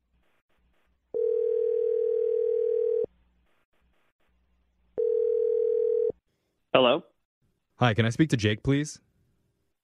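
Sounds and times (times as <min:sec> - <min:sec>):
steady telephone dial tone: 0:01.2 - 0:03.1, 0:05.0 - 0:06.1
speech: 0:06.8 - 0:07.1, 0:07.8 - 0:09.1.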